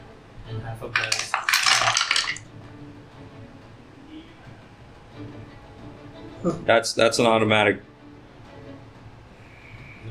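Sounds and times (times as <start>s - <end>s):
speech: 0.5s - 1.4s, 6.4s - 7.9s
dice rolling on a hard tabletop for death saving throws: 1.0s - 2.4s.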